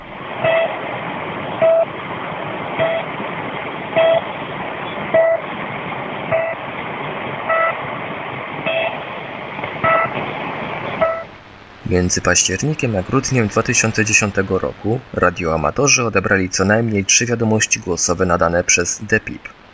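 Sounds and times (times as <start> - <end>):
hiss of shortwave radio static: 0.0 - 19.7
shortwave numbers station short electronic beeps: 1.6 - 1.9, 4.0 - 4.2, 5.1 - 5.4, 6.3 - 6.6, 7.5 - 7.8, 8.7 - 9.0, 9.8 - 10.1, 11.0 - 11.3
speech: 11.9 - 19.6.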